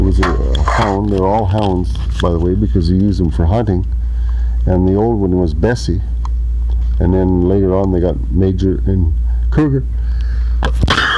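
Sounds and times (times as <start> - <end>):
low steady hum: 0.0 - 11.1
speech: 0.1 - 4.0, 4.7 - 6.1, 7.0 - 10.0, 10.6 - 11.1
person sneezing: 10.7 - 11.1.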